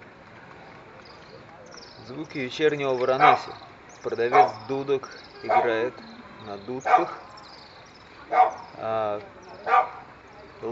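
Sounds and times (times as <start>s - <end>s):
speech: 2.1s - 7.3s, 8.8s - 9.4s
dog barking in a neighbourhood in Varanasi: 3.2s - 3.5s, 4.3s - 4.7s, 5.4s - 5.9s, 6.8s - 7.3s, 8.3s - 8.7s, 9.6s - 10.1s.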